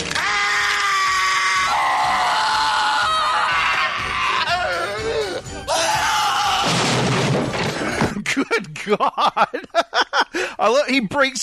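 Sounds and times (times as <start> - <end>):
people screaming in a film scene: 0.1 - 6.8
thud: 6.6 - 8.1
laughter: 7.8 - 10.6
speech: 10.6 - 11.4.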